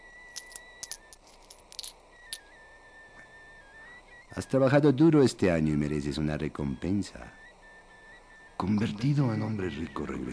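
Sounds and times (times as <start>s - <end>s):
faint steady tone: 0.0s - 10.3s
coins and jewels jingling: 0.3s - 2.5s
speech: 4.4s - 7.4s, 8.6s - 10.3s.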